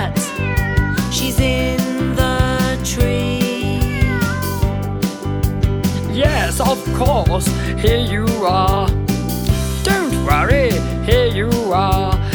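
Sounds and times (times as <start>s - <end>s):
cat meowing: 0.0s - 1.5s, 3.6s - 4.7s
upbeat music with rhythmic beat: 0.0s - 12.3s
speech: 6.7s - 9.0s.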